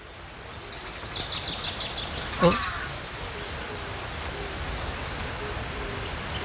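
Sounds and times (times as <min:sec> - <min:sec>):
several wild birds chirping: 0:00.0 - 0:06.4
steady outdoor hiss: 0:00.0 - 0:06.4
speech: 0:02.4 - 0:02.6
person murmuring an exclamation: 0:02.4 - 0:02.8.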